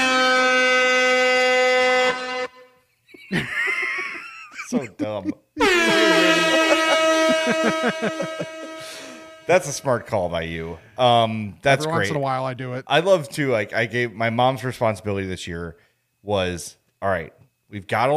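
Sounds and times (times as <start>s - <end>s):
loud sustained air horn blasts: 0.0s - 2.8s, 5.6s - 10.7s
laughter: 3.0s - 8.9s
speech: 3.3s - 3.6s, 4.7s - 6.5s, 7.4s - 18.1s.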